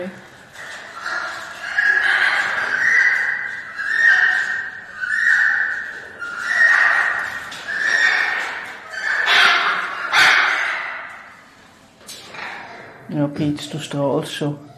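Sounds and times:
speech: 0:00.0 - 0:00.3, 0:13.2 - 0:14.7
animal vocalizing during copulation: 0:00.0 - 0:11.4.

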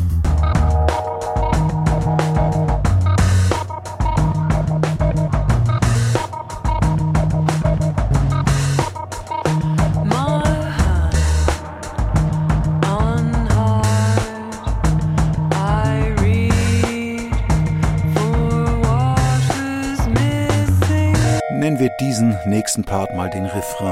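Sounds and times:
driving drum beat and bass: 0:00.0 - 0:21.4
melodic synth lines: 0:00.3 - 0:12.8, 0:21.2 - 0:23.9
speech: 0:22.3 - 0:23.9.

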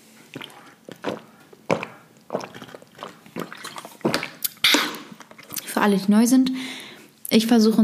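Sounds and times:
lip and throat noises: 0:00.3 - 0:05.8
person gulping and swallowing water: 0:00.3 - 0:05.8
speech: 0:05.8 - 0:07.8.

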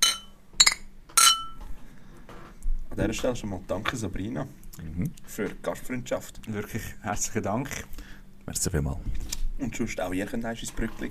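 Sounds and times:
beer glasses clinking together in a toast: 0:00.0 - 0:01.6
speech: 0:03.0 - 0:11.0.

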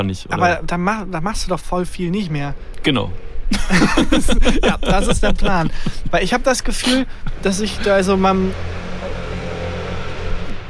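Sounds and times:
speech: 0:00.0 - 0:08.8
laughter: 0:03.5 - 0:08.2
motorboat engine droning: 0:07.1 - 0:10.6.

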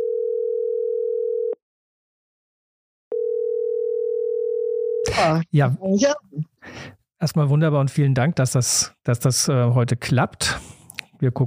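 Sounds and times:
low pure telephone tone while a call is put through: 0:00.0 - 0:01.6, 0:03.1 - 0:05.0
speech: 0:05.2 - 0:11.4.

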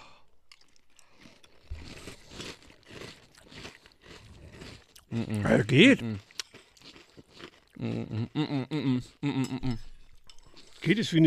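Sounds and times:
crunchy Fruit Loops breakfast cereal being bitten and chewed: 0:00.5 - 0:08.4, 0:10.1 - 0:11.2
speech: 0:05.1 - 0:06.3, 0:07.8 - 0:09.9, 0:10.8 - 0:11.2.

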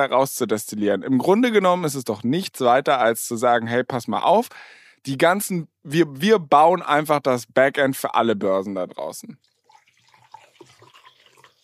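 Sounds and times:
speech: 0:00.0 - 0:09.5
water pouring into a glass: 0:09.4 - 0:11.6.

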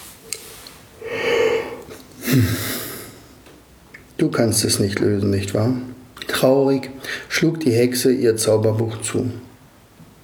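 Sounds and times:
voice acting out a drawn-out yawn: 0:01.0 - 0:03.2
speech: 0:02.3 - 0:02.7, 0:04.2 - 0:09.5.

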